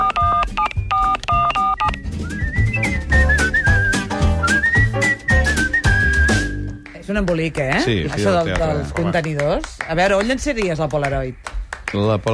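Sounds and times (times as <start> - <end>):
telephone keypad dialing tones: 0.0 - 2.0
loud music with a whistled melody: 0.3 - 6.9
speech: 7.2 - 12.3.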